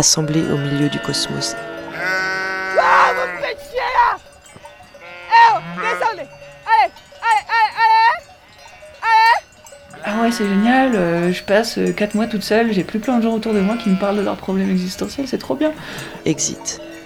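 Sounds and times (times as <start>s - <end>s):
speech: 0.0s - 2.2s, 10.3s - 17.0s
flock of ewes bleating: 0.4s - 4.2s, 5.0s - 8.1s, 10.0s - 16.2s.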